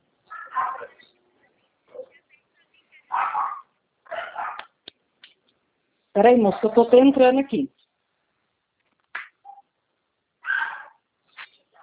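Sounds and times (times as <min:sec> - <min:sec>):
dog barking: 0:00.3 - 0:01.0, 0:03.1 - 0:04.8, 0:10.4 - 0:11.0
speech: 0:06.2 - 0:07.8.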